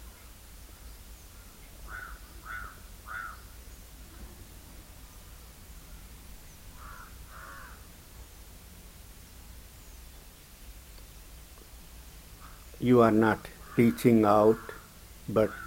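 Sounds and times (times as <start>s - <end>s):
soft hiss-like noise: 0.0s - 15.6s
crow cawing: 1.9s - 3.5s, 6.8s - 7.9s, 12.4s - 12.7s, 13.6s - 14.9s, 15.5s - 15.6s
speech: 12.8s - 15.6s.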